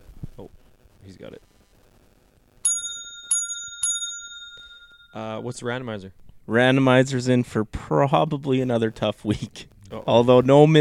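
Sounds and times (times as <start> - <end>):
speech: 0.4 - 1.6, 5.2 - 10.8
bicycle bell sound played from a phone app: 2.6 - 5.5.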